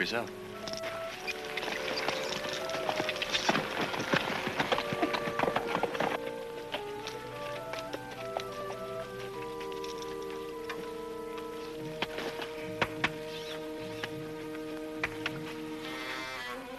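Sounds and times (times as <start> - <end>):
speech: 0.0 - 0.5
horses' hooves clip-clopping: 0.0 - 16.6.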